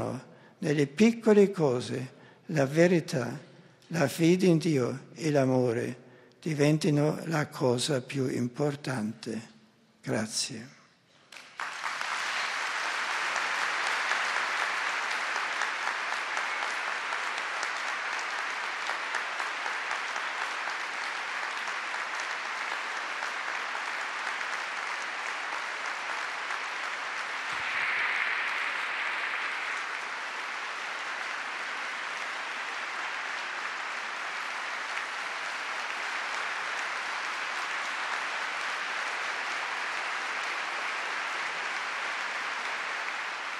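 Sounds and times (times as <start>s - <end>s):
large crowd applauding: 0.0s - 0.5s, 11.2s - 43.5s
speech: 0.2s - 10.8s.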